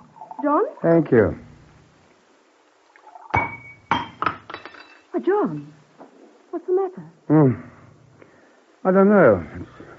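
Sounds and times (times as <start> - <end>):
speech: 0.4 - 1.5, 5.3 - 5.8, 6.5 - 7.7, 8.8 - 9.7
wine glass striking a hard surface: 3.3 - 5.7.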